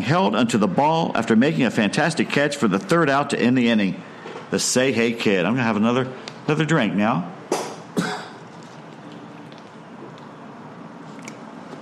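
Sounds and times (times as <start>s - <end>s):
speech: 0.0s - 7.4s
single sharp cough into the microphone: 7.5s - 8.4s.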